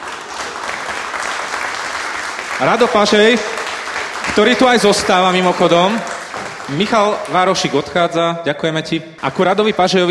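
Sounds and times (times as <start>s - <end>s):
audience applause: 0.0s - 7.9s
speech: 2.6s - 3.6s, 4.4s - 6.1s, 6.7s - 10.0s.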